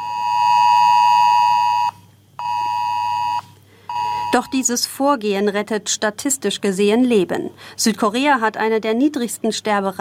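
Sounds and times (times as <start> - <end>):
phone alert alarm steady electronic tone: 0.0 - 4.7
speech: 4.4 - 9.9.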